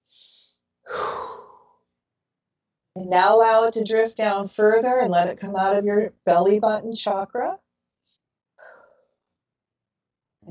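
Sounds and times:
deep breath during a guided breathing exercise: 0.0 - 1.8, 8.6 - 9.2
speech: 3.0 - 7.6.

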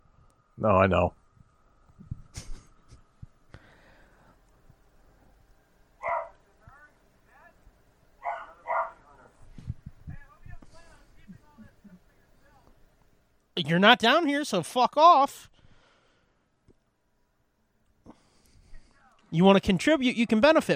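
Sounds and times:
speech: 0.6 - 1.2, 13.6 - 15.5, 19.3 - 20.7
small dog barking: 6.0 - 6.4, 8.2 - 9.0.

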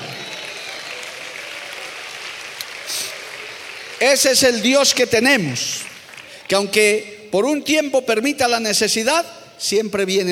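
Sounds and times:
audience applauding during a sermon: 0.0 - 6.8
speech: 4.0 - 5.9, 6.5 - 10.3.

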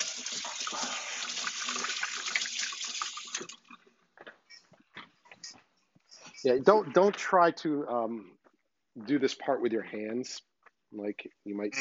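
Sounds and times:
tap water running while washing during no-knead bread making: 0.0 - 3.8
speech: 6.4 - 8.4, 9.0 - 11.7.

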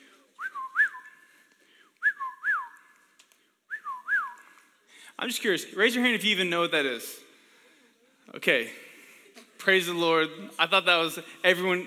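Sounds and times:
person whistling an imitation of a whippoorwill call: 2.0 - 2.9, 3.7 - 4.5
speech: 5.2 - 7.2, 8.4 - 8.8, 9.6 - 11.8.

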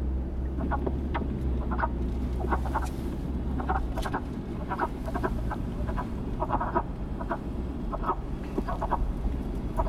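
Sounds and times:
steady low rumble: 0.0 - 9.8
chorus of frogs with hoarse low quacking croaks: 1.6 - 2.9, 3.6 - 9.0.

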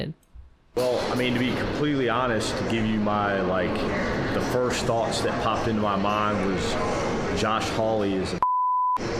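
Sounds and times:
speech: 0.0 - 0.2, 0.8 - 8.4
censor bleep over a swear word: 8.4 - 9.0.

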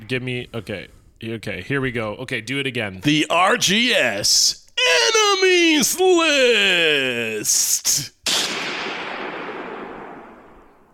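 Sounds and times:
speech: 0.1 - 8.2
gunshot sound effect: 8.2 - 10.9.

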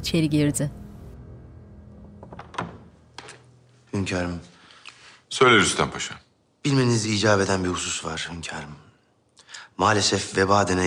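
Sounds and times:
speech: 0.0 - 0.8, 4.0 - 4.6, 5.3 - 8.9, 9.8 - 10.8
heavy double wooden door opening: 2.0 - 3.5
door knock and creak: 2.1 - 3.4.

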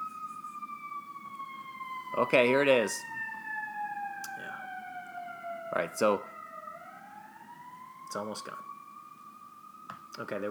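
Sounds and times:
emergency vehicle siren passing outside: 0.0 - 10.4
speech: 2.2 - 3.2, 5.8 - 6.3, 8.1 - 8.7, 10.2 - 10.4.

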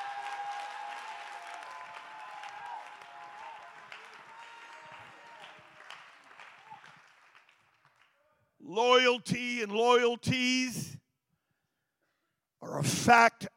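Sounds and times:
audience cheering and shouting praise to God: 0.0 - 5.8
audience clapping: 0.0 - 8.2
speech: 8.7 - 11.0, 12.8 - 13.5.

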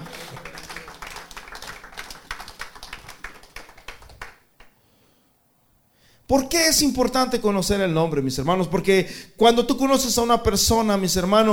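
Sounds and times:
audience applauding: 0.0 - 4.7
speech: 6.3 - 11.5.

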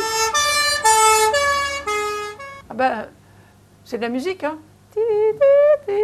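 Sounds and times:
two-tone emergency siren passing with Doppler shift: 0.0 - 2.6
speech: 2.8 - 3.2, 3.9 - 6.0.

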